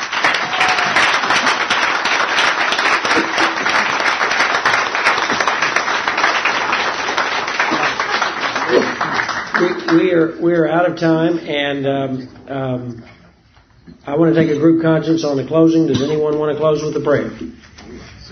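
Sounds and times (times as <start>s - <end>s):
audience applause of many hands clapping: 0.0s - 10.4s
speech: 10.1s - 13.2s, 14.0s - 17.7s.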